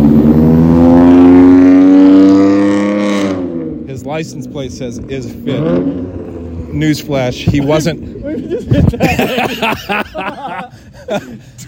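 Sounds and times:
loud car engine revving: 0.0s - 8.7s
speech: 4.2s - 11.4s
laughter: 7.6s - 11.6s.

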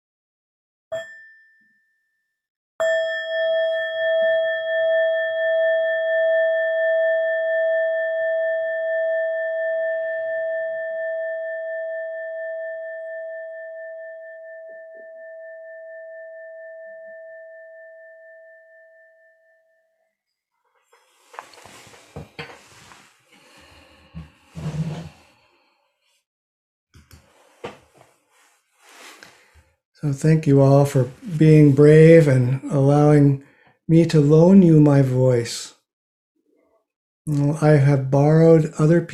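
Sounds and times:
meditation bell tapped and struck: 2.8s - 19.9s
speech: 30.0s - 35.8s, 37.3s - 39.1s.

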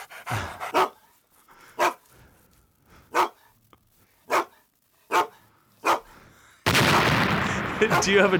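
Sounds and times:
dog barking: 0.0s - 1.1s, 1.8s - 2.1s, 3.1s - 3.6s, 4.2s - 6.2s, 7.9s - 8.2s
speech: 0.3s - 0.7s, 7.8s - 8.3s
burst of broadband noise: 6.7s - 8.3s.

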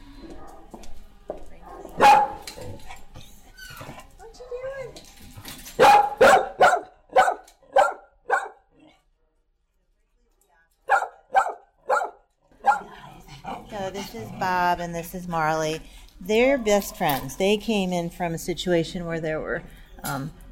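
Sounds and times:
Mastiff Great Dane mix barking: 1.8s - 2.6s, 5.8s - 8.7s, 10.9s - 13.0s
speech: 14.1s - 20.4s.

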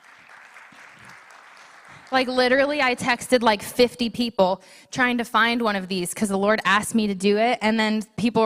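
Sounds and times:
audience applause: 0.0s - 2.4s
speech: 2.1s - 8.4s.

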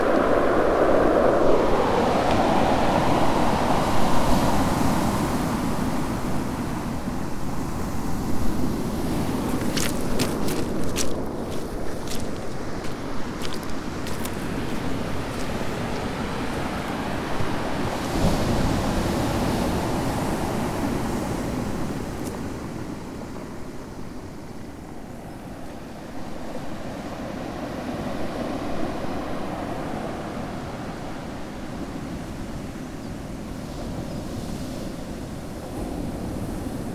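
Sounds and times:
wind on a coastal path: 0.0s - 36.9s
surf: 8.6s - 17.8s.

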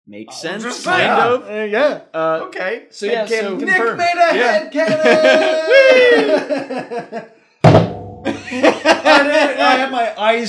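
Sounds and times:
speech: 0.1s - 7.9s, 8.5s - 10.4s
people laughing: 3.7s - 7.3s, 8.3s - 10.2s
hand slamming flat onto a table: 7.6s - 8.3s.

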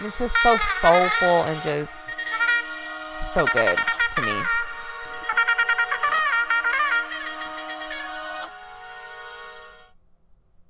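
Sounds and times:
speech: 0.0s - 2.2s, 3.4s - 4.6s
bright electronic phone ringtone for an incoming call: 2.1s - 9.8s.

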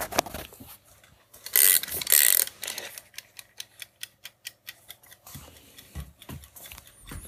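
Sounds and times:
mechanical kitchen timer being wound with rasping ratchet noise: 1.5s - 7.2s.

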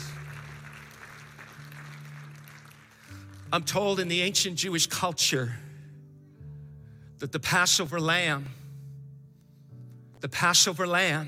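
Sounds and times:
audience clapping as an offering of praise: 0.0s - 4.1s
speech: 3.5s - 5.7s, 7.2s - 8.6s, 10.2s - 11.2s.

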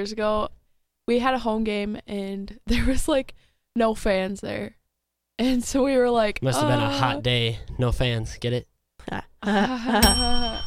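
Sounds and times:
speech: 0.0s - 4.8s, 5.4s - 10.6s
bell ringing after a joke: 10.0s - 10.6s.

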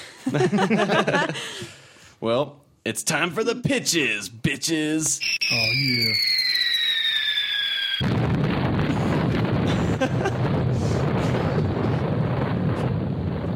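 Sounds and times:
laughter: 0.0s - 1.7s, 9.6s - 10.6s
speech: 0.2s - 6.6s
short high whine: 5.2s - 8.4s
long loud explosion with roaring crackling rumble: 5.4s - 13.5s.

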